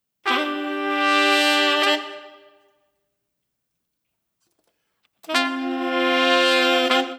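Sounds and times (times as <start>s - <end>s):
nu jazz horns: 0.2s - 2.6s, 5.2s - 7.1s.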